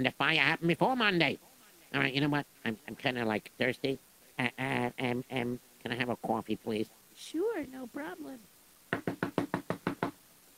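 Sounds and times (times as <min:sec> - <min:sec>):
speech: 0:00.0 - 0:09.2
sharp knocks on a door: 0:08.9 - 0:10.2.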